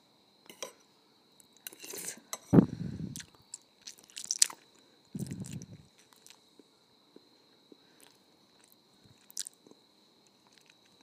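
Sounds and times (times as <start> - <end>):
faint steady high whine: 0.0 - 11.0
wet squishy chewing of ramen noodles: 3.1 - 6.4, 7.1 - 11.0.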